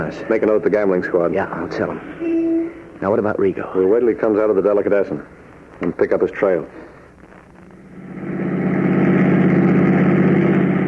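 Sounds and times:
speech: 0.0 - 2.3, 3.0 - 6.9
car engine idling: 7.9 - 10.8.

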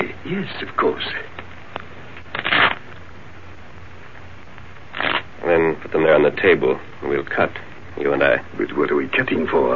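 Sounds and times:
speech: 0.0 - 1.3, 5.8 - 9.7
riffle of playing cards being shuffled: 1.8 - 3.0, 4.9 - 5.3.

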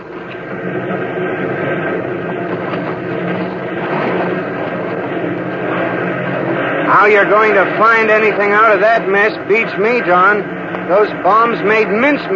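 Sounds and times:
aircraft engine drone while taxiing on water: 0.0 - 12.3
speech: 7.0 - 12.3.

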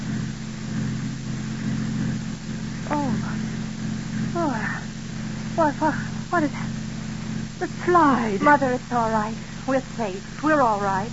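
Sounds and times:
car engine humming: 1.4 - 9.5
speech: 5.6 - 6.8, 7.6 - 11.1.

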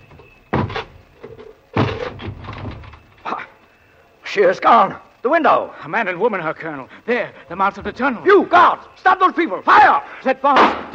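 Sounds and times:
rattling and creaking of a door: 0.0 - 3.3
door being battered down with heavy booming thuds: 0.5 - 0.9, 1.8 - 3.0
speech: 4.4 - 10.9.

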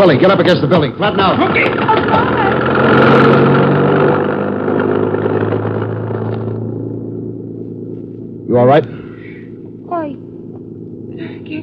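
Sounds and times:
speech: 0.0 - 3.6, 8.5 - 8.9
heavy truck engine rumbling down an alley: 0.0 - 11.6.

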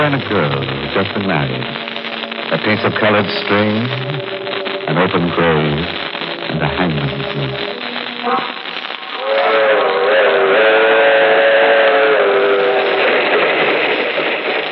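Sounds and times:
speech: 0.0 - 1.9, 2.5 - 8.6
passenger train running on rails: 9.5 - 14.7.

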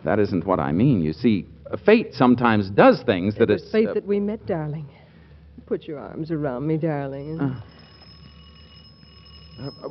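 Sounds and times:
speech: 0.0 - 5.0, 5.6 - 7.8, 9.6 - 9.8
electric doorbell ringing: 7.1 - 9.8.

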